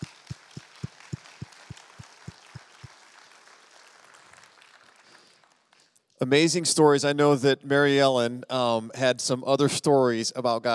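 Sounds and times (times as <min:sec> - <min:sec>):
audience clapping for the speakers: 0:00.0 - 0:06.0
speech: 0:06.2 - 0:10.7.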